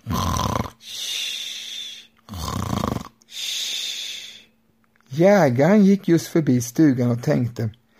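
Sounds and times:
wolf snoring with rattling inhale and whistling exhale: 0.0 - 0.8, 2.3 - 3.1
speech: 5.2 - 7.8.

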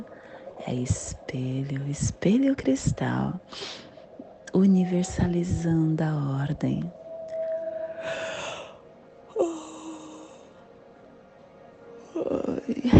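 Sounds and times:
slow deep breathing: 0.0 - 0.6, 3.4 - 4.4, 7.3 - 10.6
faint steady hum: 0.0 - 12.9
speech: 0.7 - 3.9, 4.5 - 7.0.

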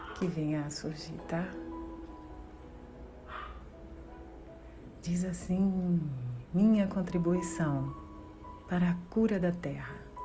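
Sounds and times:
quiet background hum: 0.0 - 10.2
speech: 0.2 - 1.7, 5.0 - 8.0, 8.7 - 10.1
faint dog bark: 3.2 - 3.7.

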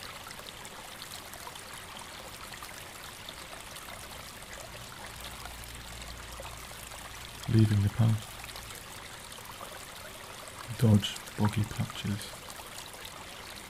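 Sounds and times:
small stream trickling over stones toward a main river: 0.0 - 13.6
speech: 7.6 - 8.3, 10.8 - 12.4.

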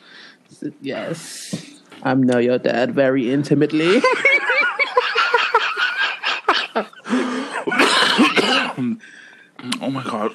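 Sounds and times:
speech: 0.6 - 4.3, 6.8 - 7.2, 8.9 - 10.3
laughter: 3.8 - 8.9
person coughing: 6.5 - 9.1
person clearing throat: 6.6 - 9.0.

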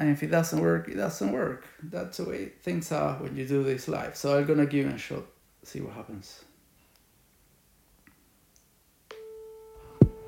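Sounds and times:
speech: 0.0 - 6.5
phone call ringing tone over the receiver with poor signal: 9.1 - 10.2.

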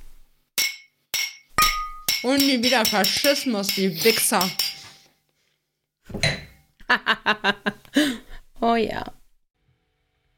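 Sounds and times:
glasses clinking together in a toast: 0.6 - 5.0
speech: 2.2 - 4.7, 6.9 - 7.8, 8.7 - 9.2
laughter: 6.8 - 8.1.

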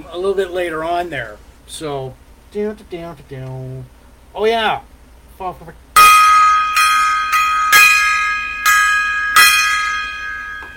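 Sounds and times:
speech: 0.0 - 5.8
gong being struck: 6.0 - 10.7.

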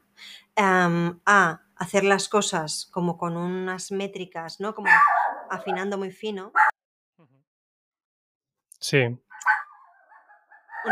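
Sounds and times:
speech: 0.6 - 6.8, 8.8 - 9.6
female dog barking: 4.8 - 6.7, 9.4 - 10.8.

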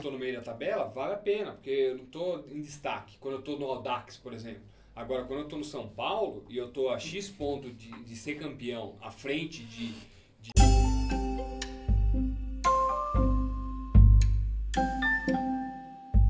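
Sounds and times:
speech: 0.2 - 10.6
phone's melodic ringtone of bright chiming notes: 10.6 - 14.0, 14.8 - 16.2.

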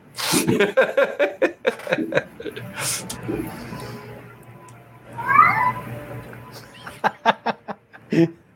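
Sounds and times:
people chuckling: 0.3 - 3.1, 6.6 - 8.4
speech: 0.4 - 3.8, 8.2 - 8.4
cat meowing loudly: 5.2 - 5.9.

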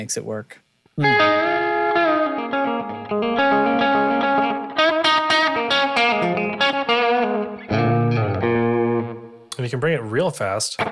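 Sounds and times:
speech: 0.0 - 1.6, 9.7 - 10.9
electric guitar playing chords through slapback delay with dulled top end: 1.0 - 9.4.

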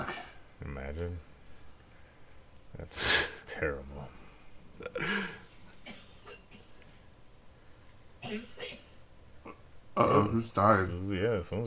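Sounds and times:
speech: 0.9 - 1.3, 2.8 - 4.2, 8.3 - 8.5, 10.0 - 11.6
person coughing hard and raspy after a bong hit: 4.8 - 6.8, 8.2 - 10.4.

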